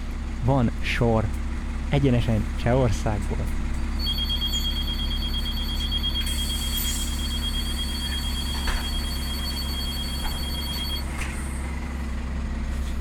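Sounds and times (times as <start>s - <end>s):
loud constant rumble of an idling bus engine: 0.0s - 12.9s
speech: 0.4s - 3.6s
bus door-closing chime on a 12-metre step-entrance bus in eastern Germany: 3.9s - 11.8s.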